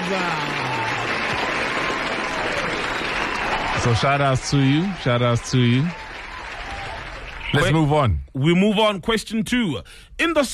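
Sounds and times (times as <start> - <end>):
group applause: 0.0 - 7.8
speech: 0.1 - 0.8, 3.8 - 6.0, 7.5 - 10.5.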